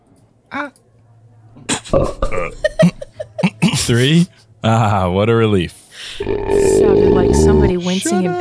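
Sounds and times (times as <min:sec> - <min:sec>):
speech: 0:00.5 - 0:00.8, 0:01.9 - 0:02.7, 0:03.9 - 0:08.3
long loud gravelly belch: 0:01.8 - 0:02.6, 0:06.2 - 0:07.7
laughter: 0:02.0 - 0:04.3
short throaty grunt: 0:06.2 - 0:07.6.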